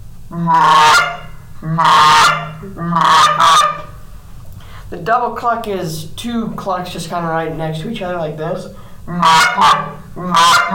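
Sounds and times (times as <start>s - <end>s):
speech: 0.3s - 3.7s, 4.9s - 10.7s
goose honks: 0.3s - 4.0s, 9.1s - 10.7s.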